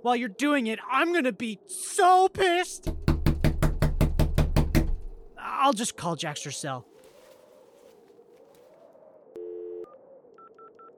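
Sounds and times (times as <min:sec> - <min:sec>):
speech: 0:00.0 - 0:03.0, 0:05.6 - 0:06.9
firm knocks on a door: 0:02.8 - 0:05.2.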